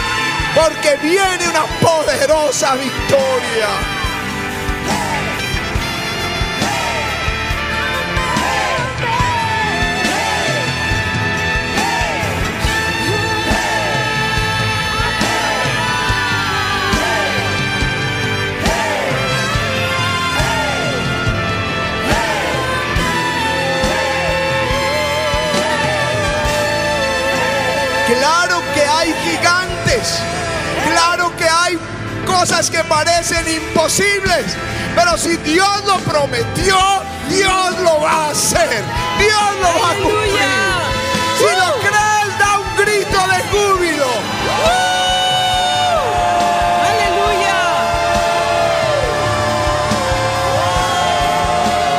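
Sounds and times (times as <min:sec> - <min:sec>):
crowd shouting and cheering at altar: 0:00.0 - 0:51.9
speech: 0:00.6 - 0:04.0, 0:31.0 - 0:40.8.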